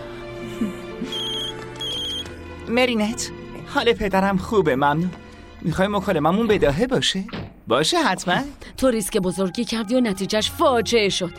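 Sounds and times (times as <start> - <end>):
speech: 0.6 - 1.2, 2.7 - 11.3
phone ringtone signalling an incoming call: 1.1 - 2.3.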